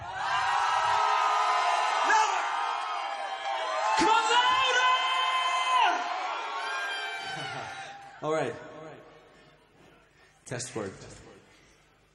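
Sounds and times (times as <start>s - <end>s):
audience at a singing event screaming and cheering: 0.0s - 8.2s
speech: 8.2s - 8.6s, 10.5s - 11.2s.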